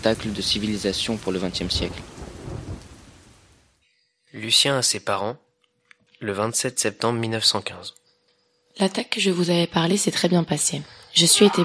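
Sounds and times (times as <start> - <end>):
speech: 0.0 - 2.2, 4.4 - 5.4, 6.2 - 8.0, 8.8 - 11.6
deep roll of thunder rumbling: 0.0 - 3.8
steady heavy rain: 0.0 - 3.8.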